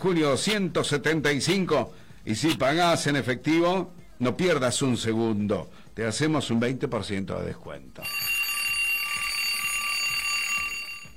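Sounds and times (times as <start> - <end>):
speech: 0.0 - 8.3
electronic alarm clock ringing: 8.0 - 11.1.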